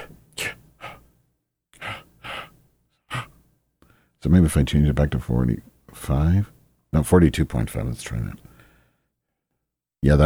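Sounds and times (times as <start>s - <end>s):
breathy mouth exhalations into a microphone: 0.0s - 1.1s, 1.8s - 4.1s
speech: 4.2s - 8.5s, 10.0s - 10.2s.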